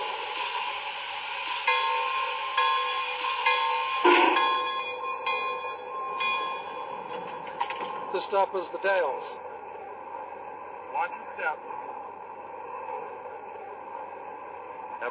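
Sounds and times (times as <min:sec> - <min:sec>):
passenger train engine droning at a station platform: 0:00.0 - 0:15.1
bell-like ringing tone: 0:01.7 - 0:08.0
metallic clanks: 0:03.5 - 0:08.1
speech: 0:08.2 - 0:09.5, 0:11.4 - 0:11.9.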